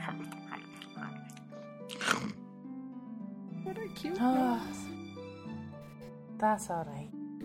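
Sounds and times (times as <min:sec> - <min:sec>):
voice imitating a pig chewing a flower: 0:01.9 - 0:02.4
voice making a louder crunchy snort: 0:01.9 - 0:02.4
speech: 0:03.8 - 0:04.8, 0:06.4 - 0:07.4.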